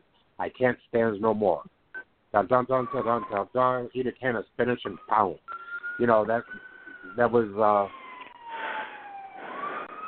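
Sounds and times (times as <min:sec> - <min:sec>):
speech: 0:00.4 - 0:08.0
ambulance siren wailing past: 0:02.6 - 0:03.9, 0:04.7 - 0:10.0.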